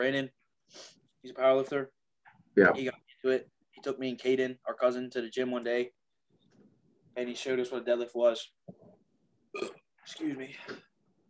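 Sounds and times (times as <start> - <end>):
speech: 0.0 - 2.0, 2.6 - 6.0, 7.2 - 8.6, 9.5 - 10.9
person burping: 9.5 - 9.9.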